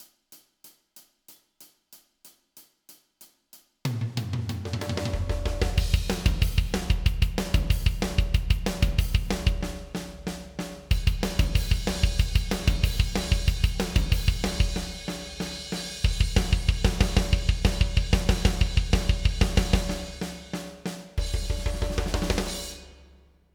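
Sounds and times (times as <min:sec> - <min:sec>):
drums: 0:00.0 - 0:23.3.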